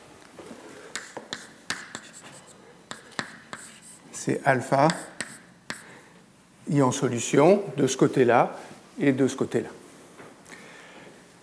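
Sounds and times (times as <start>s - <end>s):
writing on a board during a lecture: 0.9s - 4.0s, 4.9s - 5.9s
speech: 4.2s - 5.0s, 6.7s - 9.8s.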